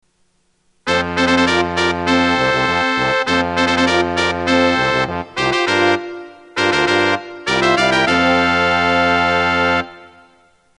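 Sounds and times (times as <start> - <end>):
opening fanfare: 0.9 - 10.6.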